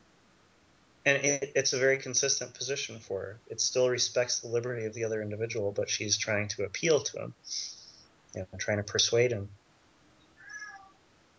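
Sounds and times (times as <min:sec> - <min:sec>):
speech: 0:01.0 - 0:07.8, 0:08.4 - 0:09.6
faint cat meow: 0:10.4 - 0:11.0.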